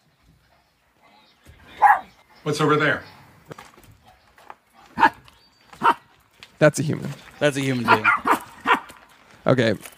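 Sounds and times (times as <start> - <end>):
dogs barking: 1.7 - 2.2, 4.8 - 6.1, 7.8 - 9.0
speech: 2.4 - 3.1, 6.6 - 8.2, 9.5 - 9.9.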